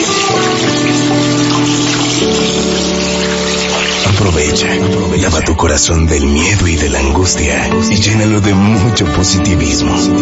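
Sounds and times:
tap water running for handwashing: 0.0s - 6.8s
speech: 4.5s - 10.2s.

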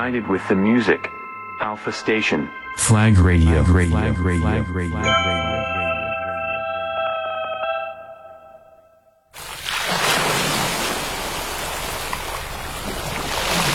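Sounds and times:
speech: 0.0s - 5.6s
sustained tones: 0.0s - 9.2s
ocean waves washing ashore: 9.4s - 13.7s.

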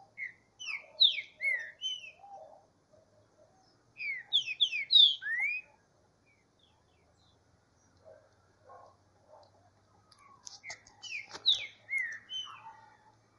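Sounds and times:
Green-winged saltator song: 0.2s - 2.6s, 4.0s - 5.8s, 10.6s - 12.9s.

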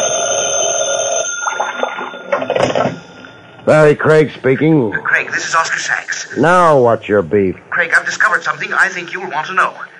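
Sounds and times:
telephone bell ringing in an office: 0.0s - 3.7s
speech: 3.7s - 9.9s.

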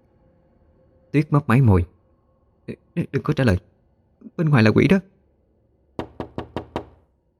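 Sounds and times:
speech: 1.1s - 1.9s, 2.7s - 3.7s, 4.3s - 5.1s
sharp knocks banging on a door: 6.0s - 7.1s.

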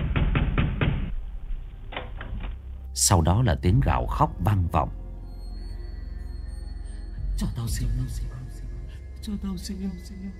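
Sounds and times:
heavy pounding on a door: 0.0s - 1.1s
speech: 3.0s - 5.0s, 7.4s - 8.5s, 9.2s - 10.3s.

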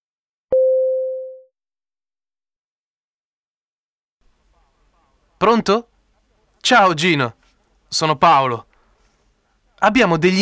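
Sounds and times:
electronic telephone tone as a call is placed to a mobile phone: 0.5s - 1.5s
speech: 5.4s - 5.9s, 6.6s - 8.7s, 9.8s - 10.4s.

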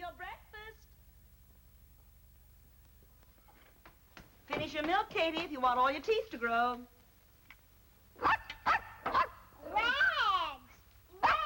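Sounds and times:
speech: 4.6s - 7.0s
hungry puppy barking: 8.2s - 9.4s, 11.2s - 11.4s.

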